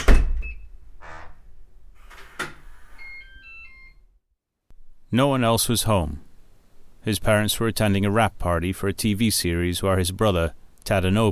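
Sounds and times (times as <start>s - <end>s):
apartment door being closed with a heavy thud: 0.0s - 3.6s
speech: 5.1s - 6.3s, 7.0s - 11.3s.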